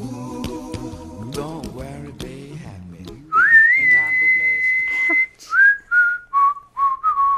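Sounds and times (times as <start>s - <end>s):
person whistling a short tune: 3.3s - 7.3s.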